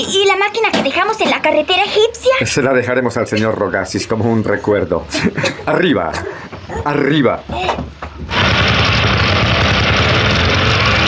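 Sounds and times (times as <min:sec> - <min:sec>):
speech: 0:00.0 - 0:08.4
motorcycle engine starting and running: 0:08.3 - 0:11.0.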